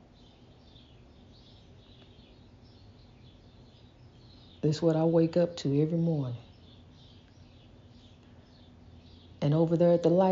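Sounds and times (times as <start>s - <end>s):
faint wild birds chirping and twittering: 0.0s - 10.2s
steady low outdoor rumble: 0.0s - 10.2s
speech: 4.6s - 6.5s, 9.5s - 10.2s.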